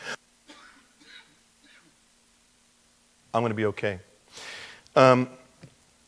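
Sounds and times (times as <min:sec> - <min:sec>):
person coughing with raspy, wheezing coughs: 0:00.0 - 0:02.0
speech: 0:03.4 - 0:04.1, 0:05.0 - 0:05.4.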